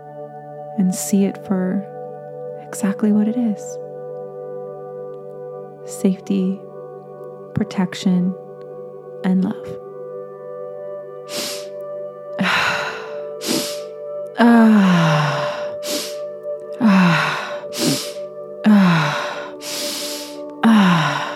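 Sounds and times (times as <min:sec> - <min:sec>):
soft sustained musical drone: 0:00.0 - 0:21.3
speech: 0:00.8 - 0:01.9, 0:02.7 - 0:03.8, 0:05.9 - 0:06.7, 0:07.6 - 0:08.4, 0:09.2 - 0:09.8
deep steady rhythmic breathing: 0:11.2 - 0:21.3
low voiced sigh: 0:12.4 - 0:16.2, 0:16.8 - 0:21.3.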